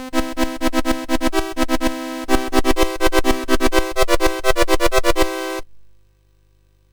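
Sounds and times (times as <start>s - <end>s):
chiptune game music on MOS6581R4 sound chip: 0.2s - 5.6s.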